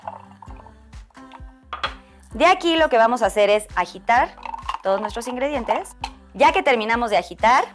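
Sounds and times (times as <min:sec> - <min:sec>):
mineral water poured into a wine glass with syrup, lemon and ice cubes: 0:00.0 - 0:00.8
ice cubes clinking in a wine glass: 0:01.8 - 0:02.0
speech: 0:02.3 - 0:07.7.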